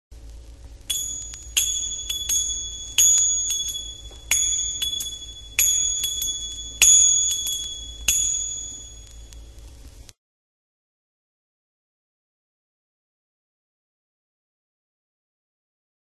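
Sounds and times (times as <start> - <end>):
crotales ringing: 0.9 - 9.3.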